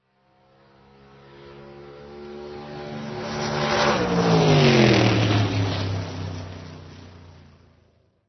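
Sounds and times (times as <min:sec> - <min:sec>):
dragster in an auto race: 0:01.6 - 0:07.3.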